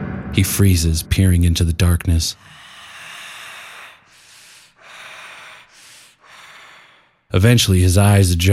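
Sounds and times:
speech: 0.4s - 2.6s, 7.3s - 8.5s
raspy breathing of a lanky humanlike creature in a dark church: 2.3s - 7.3s.

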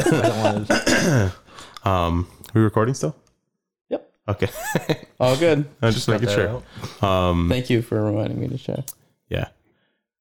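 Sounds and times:
laughter: 0.0s - 1.4s, 4.4s - 6.6s
speech: 0.0s - 3.2s, 3.9s - 9.6s
person coughing with rough throaty bursts: 0.4s - 1.4s.

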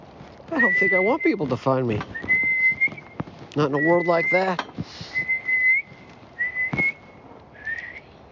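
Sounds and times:
speech: 0.5s - 2.2s, 3.6s - 5.1s
person whistling loudly to summon people: 0.6s - 1.4s, 2.2s - 3.0s, 5.0s - 8.1s.

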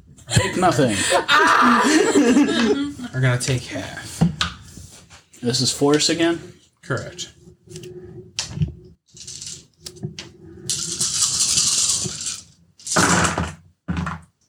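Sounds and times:
laughter: 0.3s - 3.2s
speech: 0.4s - 4.2s, 5.4s - 7.8s
dice clattering across a hard surface: 9.2s - 9.7s, 10.7s - 13.3s.

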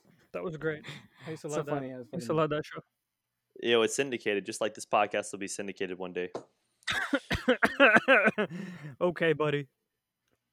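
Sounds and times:
speech: 0.4s - 3.0s, 3.6s - 9.8s
person coughing after vaping: 6.9s - 8.8s.

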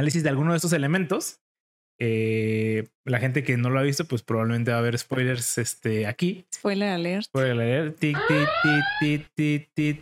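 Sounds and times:
speech: 0.0s - 1.4s, 2.0s - 10.0s
loud electronic alarm bursts: 8.1s - 9.2s
rising wail: 8.2s - 9.2s.

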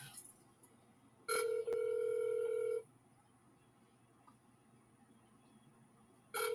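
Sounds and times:
telephone ringback tone on an outgoing call: 1.3s - 2.8s, 6.4s - 6.5s.

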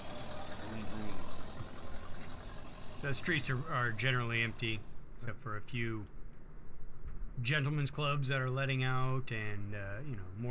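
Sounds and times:
car engine running: 0.0s - 5.2s
speech: 3.0s - 6.2s, 7.4s - 10.4s.

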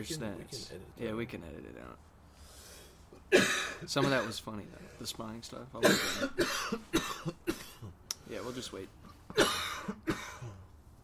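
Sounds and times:
speech: 0.0s - 2.1s, 3.3s - 7.4s, 8.3s - 10.2s
person coughing: 3.3s - 4.4s, 5.8s - 8.0s, 9.3s - 10.7s.

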